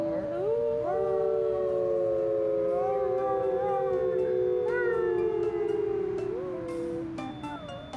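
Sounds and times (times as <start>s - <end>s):
several people together imitating a wolf howl: 0.0s - 7.6s.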